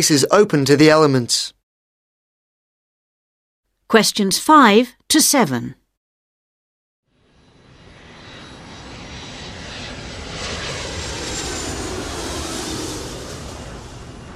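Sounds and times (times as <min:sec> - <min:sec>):
speech: 0:00.0 - 0:01.6, 0:03.9 - 0:05.8
airplane flying overhead: 0:07.1 - 0:14.3.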